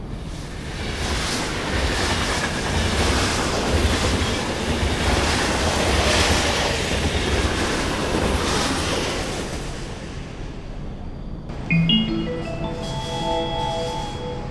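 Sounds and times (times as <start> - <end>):
train passing through a station without stopping: 0.0 - 14.4
bright electronic station chime melody: 11.5 - 14.4.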